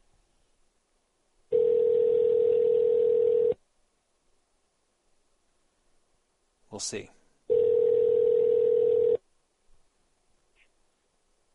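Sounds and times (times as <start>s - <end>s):
telephone ring tone heard by a caller redialing a dropped call: 1.5s - 3.6s, 7.5s - 9.2s
speech: 6.8s - 7.2s.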